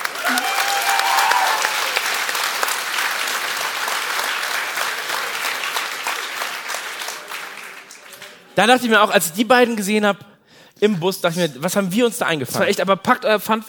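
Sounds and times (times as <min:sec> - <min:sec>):
audience applause at a live stage show: 0:00.0 - 0:08.5
speech: 0:08.6 - 0:13.6.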